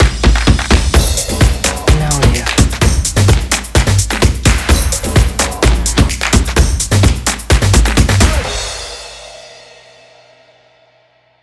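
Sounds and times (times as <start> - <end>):
energetic percussion logo: 0.0 - 10.2.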